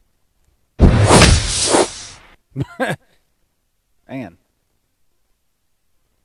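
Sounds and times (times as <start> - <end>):
magic spell whoosh: 0.8 - 2.2
speech: 2.6 - 3.0, 4.1 - 4.4.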